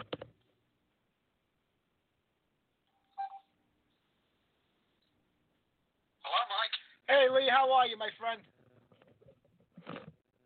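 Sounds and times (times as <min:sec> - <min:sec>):
electronic call-dialing tones from Skype: 0:02.9 - 0:03.5
speech: 0:07.3 - 0:08.6.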